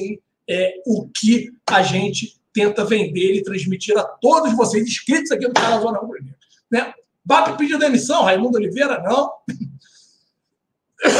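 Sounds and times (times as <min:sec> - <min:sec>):
speech: 0:00.0 - 0:09.8
person coughing throatily: 0:09.5 - 0:09.8, 0:11.0 - 0:11.1.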